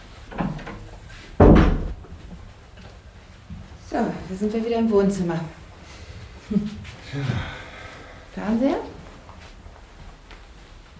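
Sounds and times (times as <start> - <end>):
bathroom door soft rubbing movement: 0.4 - 2.4
speech: 3.9 - 5.6, 6.5 - 7.6, 8.4 - 9.0.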